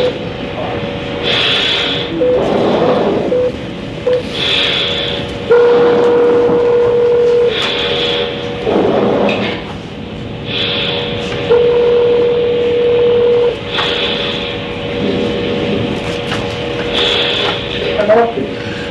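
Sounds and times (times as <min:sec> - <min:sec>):
low hum: 0:00.0 - 0:18.8
steady electronic tone: 0:01.4 - 0:09.2, 0:10.4 - 0:16.0.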